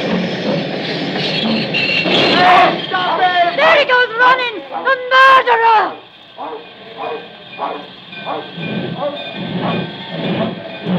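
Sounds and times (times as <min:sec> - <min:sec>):
train rolling along the tracks between Dalbeath and Newton Stewart: 0:00.0 - 0:10.9
brief metallic squeals: 0:00.8 - 0:03.9, 0:06.0 - 0:10.9.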